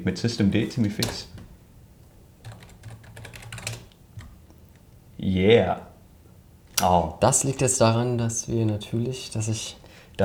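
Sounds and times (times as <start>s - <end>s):
speech: 0.0s - 1.4s, 5.2s - 5.9s, 6.8s - 10.2s
typing on a German layout computer keyboard: 0.8s - 1.5s, 2.4s - 4.6s.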